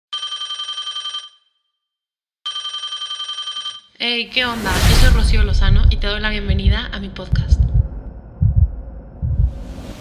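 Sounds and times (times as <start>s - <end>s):
speech: 4.0s - 7.7s
low heartbeat thumping in lub-dub pairs: 5.6s - 9.8s.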